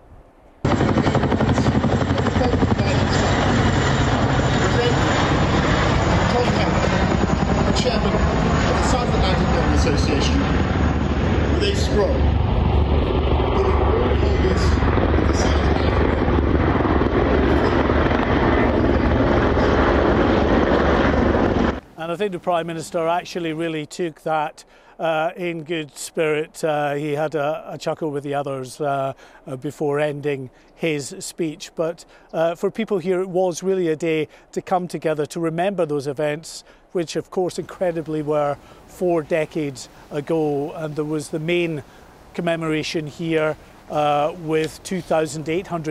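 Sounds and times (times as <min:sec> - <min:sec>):
helicopters flying overhead: 0:00.6 - 0:23.7, 0:37.6 - 0:45.8
speech: 0:22.3 - 0:45.8.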